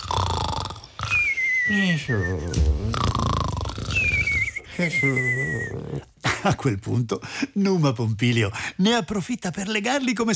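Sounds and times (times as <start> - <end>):
deep snoring of sleeping woodland creatures after drinking: 0.0 - 6.2
high whistling snoring exhales: 0.4 - 6.0
speech: 1.7 - 3.2, 4.8 - 10.3.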